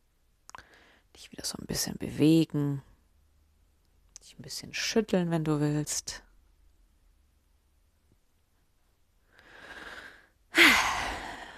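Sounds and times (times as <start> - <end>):
speech: 1.2 - 2.9, 4.3 - 6.3
deep breathing during a slow breathing exercise: 9.3 - 11.5.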